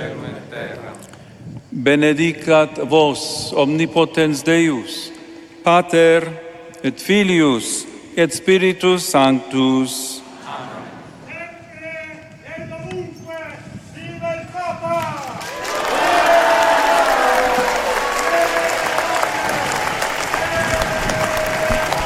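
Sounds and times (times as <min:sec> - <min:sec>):
speech: 0:01.8 - 0:10.8
large crowd applauding: 0:15.1 - 0:22.0.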